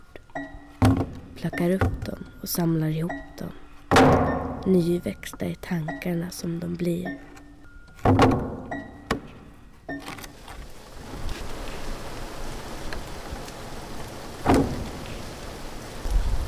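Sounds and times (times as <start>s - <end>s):
warm rain falling: 0.0s - 7.2s, 10.0s - 16.4s
knocks or thumps: 0.4s - 2.4s, 3.9s - 4.7s, 8.0s - 9.4s
speech: 0.4s - 7.3s.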